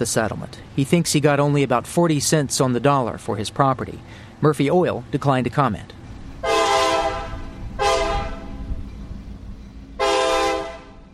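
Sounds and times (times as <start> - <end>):
speech: 0.0 - 6.0
steady low rumble of a passing train: 0.0 - 11.1
train horn blasts: 6.4 - 8.7, 10.0 - 11.1.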